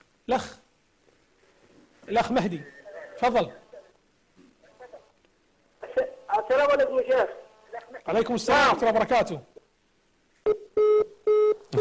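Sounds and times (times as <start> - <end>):
speech: 0.3 - 0.6, 2.1 - 3.6, 6.5 - 9.5, 10.4 - 10.6
telephone line tones after a disconnected call: 10.4 - 11.7.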